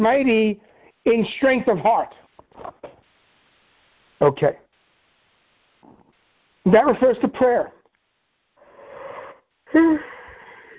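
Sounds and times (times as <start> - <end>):
speech: 0.0 - 2.8, 4.2 - 4.6, 6.6 - 7.8, 9.7 - 10.2
person yawning: 8.8 - 10.7.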